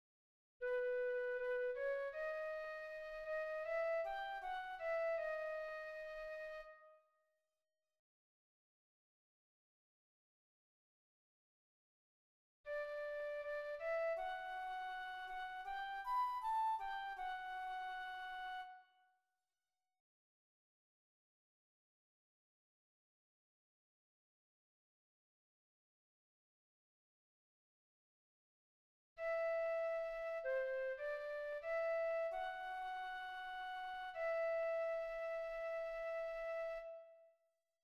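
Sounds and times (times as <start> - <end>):
flute: 0.6 - 7.1, 12.7 - 19.1, 29.2 - 37.4.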